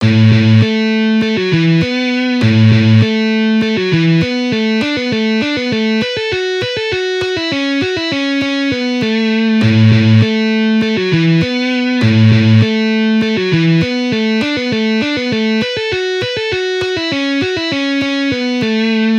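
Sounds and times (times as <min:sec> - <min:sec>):
guitar string skipping: 0:00.0 - 0:19.1.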